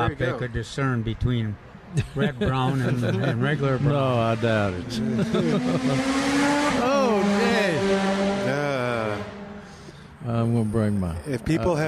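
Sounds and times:
speech: 0:00.0 - 0:07.3, 0:10.3 - 0:11.8
laughter: 0:01.9 - 0:06.2
motorcycle engine revving and passing by: 0:03.6 - 0:09.7.

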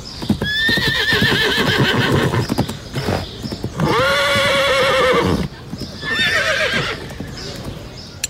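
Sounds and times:
racing horse whinnying: 0:00.5 - 0:02.4, 0:03.8 - 0:07.1.

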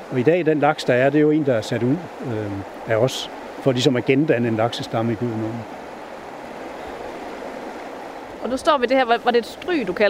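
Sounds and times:
fast-flowing river water tumbling over rapids: 0:00.0 - 0:10.0
speech: 0:00.1 - 0:05.8, 0:08.4 - 0:10.0.

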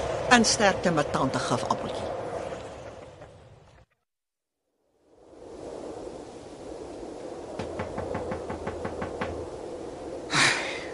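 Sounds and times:
windy rush: 0:00.0 - 0:03.8, 0:04.9 - 0:10.9
speech: 0:00.3 - 0:02.1
knocking on a door: 0:07.6 - 0:09.4.

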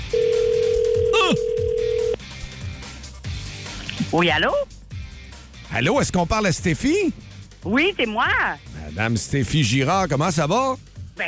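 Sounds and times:
telephone ringback tone on an outgoing call: 0:00.0 - 0:02.2
speech: 0:04.1 - 0:04.7, 0:05.7 - 0:11.2.

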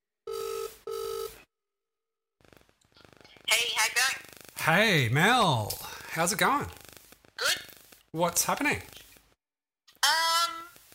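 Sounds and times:
electronic phone rings on an outgoing call: 0:00.3 - 0:01.4
speech: 0:03.5 - 0:06.8, 0:08.1 - 0:09.0
rustling noise: 0:06.2 - 0:09.4, 0:10.7 - 0:10.9.

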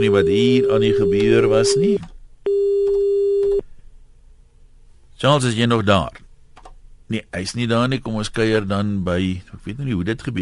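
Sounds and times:
speech: 0:00.0 - 0:02.1, 0:05.2 - 0:06.2, 0:07.1 - 0:10.4
telephone busy tone after a dropped call: 0:00.0 - 0:03.6
faint noise: 0:00.0 - 0:10.4.

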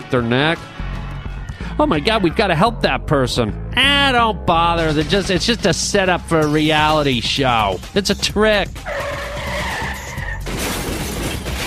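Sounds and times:
speech: 0:00.1 - 0:00.8, 0:01.8 - 0:08.9
car skidding with tire squeal: 0:08.8 - 0:10.4.

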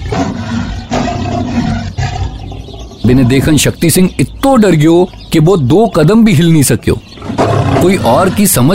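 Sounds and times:
tiger roaring: 0:00.0 - 0:03.4, 0:07.2 - 0:08.7
speech: 0:03.0 - 0:08.7.

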